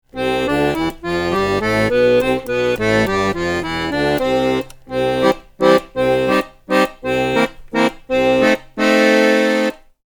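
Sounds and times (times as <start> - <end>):
bass playing a scale: 0.1 - 9.8.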